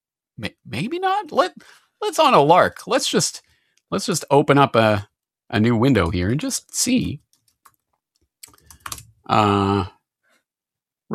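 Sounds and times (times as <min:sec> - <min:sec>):
speech: 0:00.4 - 0:07.2, 0:09.3 - 0:10.0
typing on a computer keyboard entering a browser search: 0:07.2 - 0:09.1.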